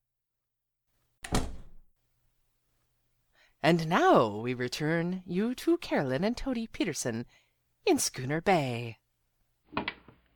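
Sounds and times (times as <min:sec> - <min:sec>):
door swinging shut with a solid thud: 0:01.2 - 0:01.9
speech: 0:03.6 - 0:09.0.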